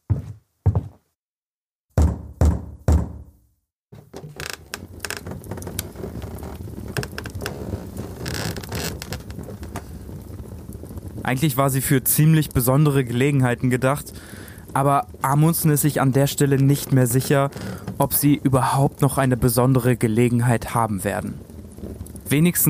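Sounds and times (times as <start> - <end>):
solid hollow knocks on a wooden door: 1.9 - 3.3
speech: 11.3 - 22.6.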